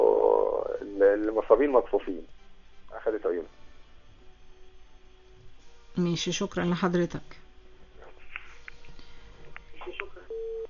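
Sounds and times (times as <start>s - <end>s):
faint noise: 0.0s - 10.6s
speech: 1.1s - 2.4s, 3.0s - 3.6s, 6.0s - 7.4s
telephone line tone of an incoming call: 10.3s - 10.6s.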